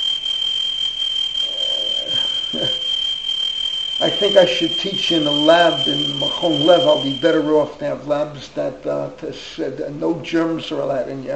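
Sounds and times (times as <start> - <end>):
shrill high-pitched alarm tone: 0.0 - 7.9
faint hum: 0.0 - 11.3
speech: 2.5 - 2.8, 4.0 - 11.3.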